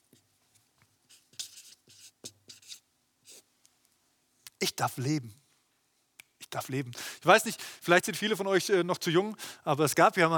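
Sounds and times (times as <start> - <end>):
writing on a board: 1.1 - 3.4
speech: 4.6 - 5.4, 6.5 - 10.3.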